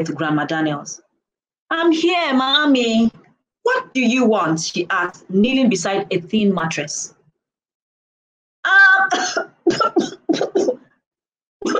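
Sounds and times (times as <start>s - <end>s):
speech: 0.0s - 1.1s, 1.7s - 7.2s, 8.7s - 10.7s
old woman coughing wheezily: 9.0s - 10.8s.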